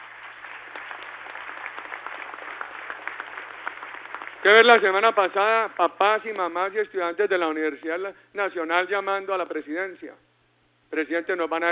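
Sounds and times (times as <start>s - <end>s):
crowd applauding: 0.0s - 5.7s
speech: 4.4s - 10.2s, 10.9s - 11.6s.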